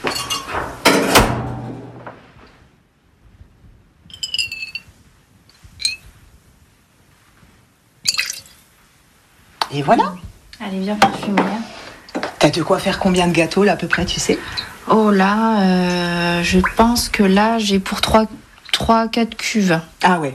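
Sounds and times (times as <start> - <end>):
glass clinking: 0.1 - 1.1, 4.1 - 4.9, 5.8 - 6.0, 8.1 - 8.6
essential oil poured from glass beaker into small flask: 8.1 - 8.6
speech: 9.8 - 11.7, 12.4 - 20.3.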